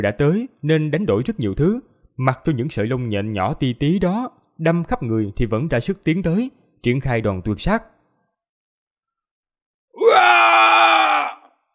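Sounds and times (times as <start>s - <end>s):
speech: 0.0s - 7.9s
monster's earth-shaking roaring scream: 10.0s - 11.5s.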